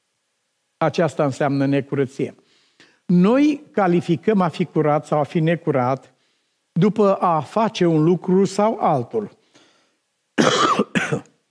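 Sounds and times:
speech: 0:00.8 - 0:02.4, 0:03.1 - 0:06.1, 0:06.8 - 0:09.4
harsh coughs: 0:10.4 - 0:11.4.

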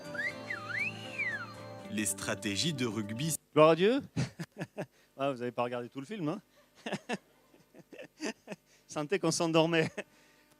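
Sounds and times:
clear whistle in a whistled language: 0:00.0 - 0:01.9
speech: 0:01.9 - 0:07.2, 0:09.0 - 0:10.1
laughter: 0:06.6 - 0:08.6, 0:09.8 - 0:10.1.

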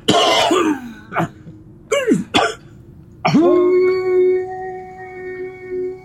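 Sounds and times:
throat-clearing bursts: 0:00.0 - 0:03.4
harsh coughs: 0:00.0 - 0:03.5
long steady droning tone: 0:00.0 - 0:06.0.

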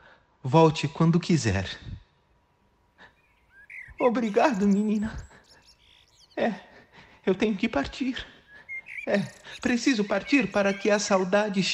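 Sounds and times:
speech: 0:00.4 - 0:01.9, 0:04.0 - 0:05.3, 0:06.4 - 0:08.3, 0:09.0 - 0:11.7
bird chirping as it flies free from a cage: 0:02.4 - 0:11.7.

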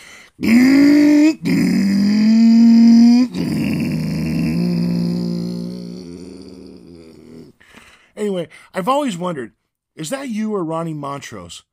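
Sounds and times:
speech: 0:00.4 - 0:01.6, 0:08.8 - 0:11.7
voice imitating a guitar mimicking a revving engine: 0:00.4 - 0:07.5.

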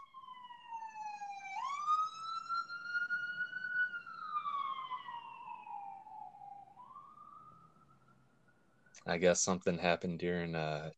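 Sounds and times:
police car siren passing outside: 0:00.0 - 0:08.2
speech: 0:09.1 - 0:10.9.

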